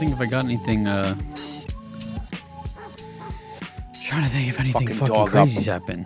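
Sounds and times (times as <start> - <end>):
speech: 0.2 - 1.5, 4.1 - 6.0
dog barking outside in the street: 2.2 - 3.6.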